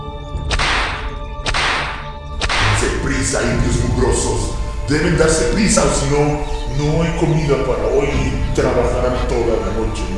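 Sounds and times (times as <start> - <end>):
whip cracks: 0.4 - 2.7
speech: 2.8 - 10.1.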